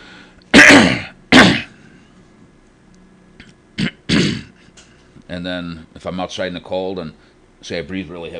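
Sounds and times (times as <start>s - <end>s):
person clearing throat: 0.5s - 1.8s, 3.4s - 4.7s
person coughing: 0.5s - 1.8s, 3.8s - 4.6s
speech: 5.3s - 8.3s.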